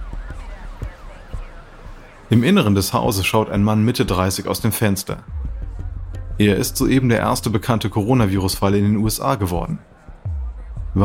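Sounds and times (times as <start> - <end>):
dull low thumps: 0.0 - 2.3, 5.2 - 11.0
ambulance emergency siren wailing: 0.0 - 7.4, 9.6 - 11.0
traffic rumble: 0.0 - 11.0
speech: 2.3 - 5.4, 6.4 - 9.9.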